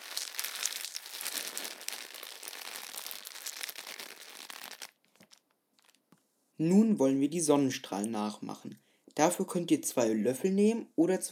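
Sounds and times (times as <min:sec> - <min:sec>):
newspaper or paper crumpled and squeezed by hand: 0:00.0 - 0:06.0
speech: 0:06.6 - 0:11.3.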